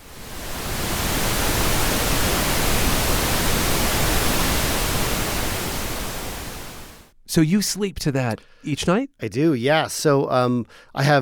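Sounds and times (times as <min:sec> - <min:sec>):
pink noise: 0:00.0 - 0:07.1
speech: 0:07.4 - 0:11.1.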